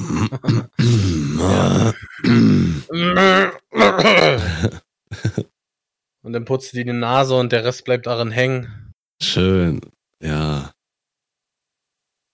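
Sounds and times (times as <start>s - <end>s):
man making gruff throat-clearing noises: 0.0s - 5.4s
speech: 0.3s - 4.8s, 6.4s - 10.7s.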